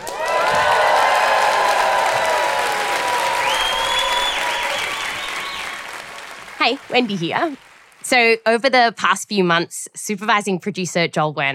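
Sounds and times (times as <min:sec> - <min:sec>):
live audience applauding at a live stage show: 0:00.0 - 0:08.1
whistles and whoops from the audience: 0:00.6 - 0:05.9
speech: 0:06.6 - 0:11.5.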